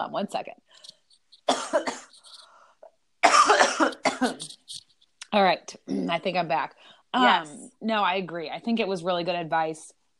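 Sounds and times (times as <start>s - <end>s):
speech: 0.0s - 1.0s, 4.2s - 4.6s, 5.3s - 10.0s
person coughing away from the microphone: 1.5s - 2.5s, 3.2s - 4.6s.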